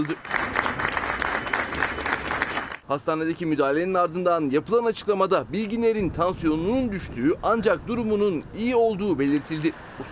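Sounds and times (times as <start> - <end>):
speech: 0.0 - 0.6, 2.9 - 10.1
crowd applauding as a stage actor is taken into an ambulance: 0.0 - 2.8.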